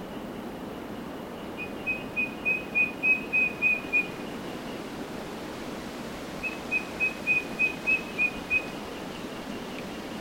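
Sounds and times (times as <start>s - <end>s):
faint constant hiss: 0.0s - 10.1s
Eastern yellow robin repeating whistled notes in Queensland: 1.6s - 4.2s, 6.4s - 8.8s.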